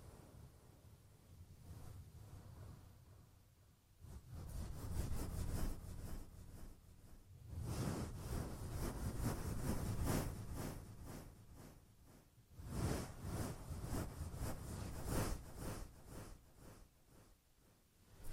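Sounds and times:
muffled rubbing of an ear massage: 4.2s - 11.8s, 12.6s - 16.9s.

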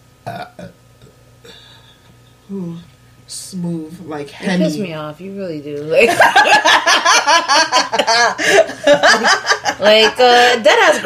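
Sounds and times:
loud deep burp: 0.2s - 1.2s
speech: 0.3s - 0.5s, 2.5s - 11.0s
laughter: 6.1s - 11.0s.

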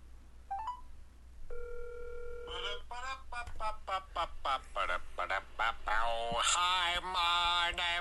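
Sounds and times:
low constant hum: 0.0s - 7.9s
phone ringtone with electronic chirps and sustained tone: 1.5s - 2.6s
speech: 6.4s - 7.9s.

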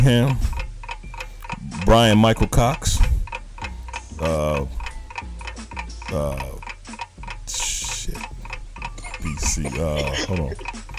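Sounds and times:
speech: 0.0s - 0.5s, 1.8s - 3.0s, 4.2s - 4.8s, 6.1s - 6.6s, 9.3s - 10.7s
ticking clock timer in a quiz game: 0.0s - 10.9s
laughter: 8.9s - 10.9s.

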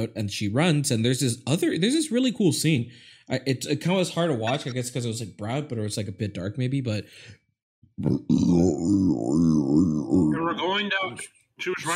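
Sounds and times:
speech: 0.0s - 7.4s, 8.0s - 11.9s
long loud burp: 8.0s - 10.4s.

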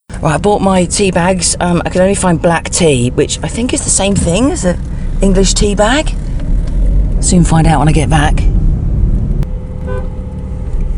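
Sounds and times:
road noise: 0.0s - 10.9s
steady rumble of car engine: 0.0s - 10.9s
speech: 0.2s - 6.2s, 7.2s - 8.5s
taxi horn toot: 9.8s - 10.4s.

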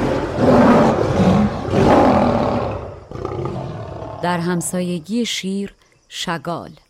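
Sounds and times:
lioness roaring in pain: 0.0s - 4.3s
speech: 4.2s - 6.8s.

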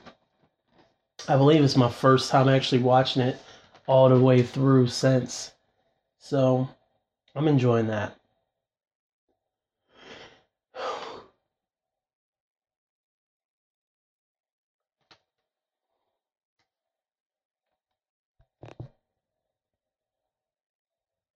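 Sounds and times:
speech: 1.3s - 5.6s, 6.2s - 6.8s, 7.4s - 8.2s
person yawning: 10.8s - 11.3s.

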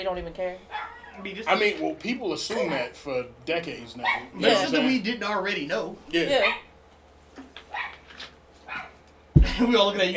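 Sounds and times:
speech: 0.0s - 6.7s, 9.6s - 10.1s
female dog barking and yipping at a door: 0.7s - 1.3s, 4.0s - 4.7s, 6.3s - 6.7s, 7.6s - 9.0s.

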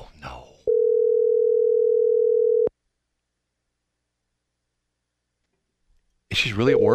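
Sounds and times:
phone ringback tone while placing a call: 0.7s - 2.7s
speech: 6.4s - 6.9s.

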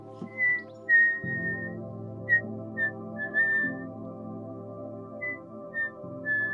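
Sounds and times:
person whistling: 0.4s - 1.7s, 2.3s - 3.8s, 5.2s - 6.5s.

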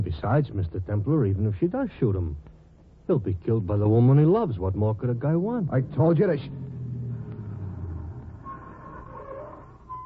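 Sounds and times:
speech: 0.0s - 2.5s, 3.1s - 6.7s
car engine rumbling: 4.0s - 10.0s
thin whining tone: 5.6s - 10.0s.

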